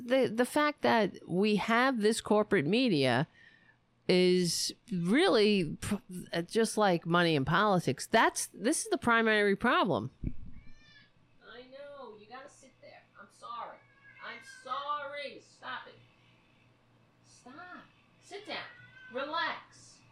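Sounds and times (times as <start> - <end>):
faint steady hum: 0.0 - 20.0
speech: 0.1 - 3.4, 4.1 - 10.4, 18.3 - 19.6
cat meowing: 13.7 - 14.7, 18.5 - 19.5.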